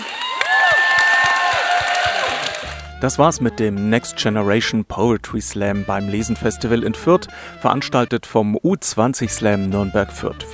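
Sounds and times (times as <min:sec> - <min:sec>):
audience shouts and whoops at a youth poetry slam: 0:00.0 - 0:02.8
audience clapping for the winner of a youth poetry slam at a reading festival: 0:00.0 - 0:02.9
speech: 0:03.0 - 0:10.5.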